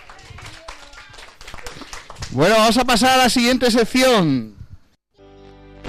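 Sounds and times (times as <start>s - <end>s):
children clapping: 0.0s - 2.9s
speech: 2.3s - 4.6s.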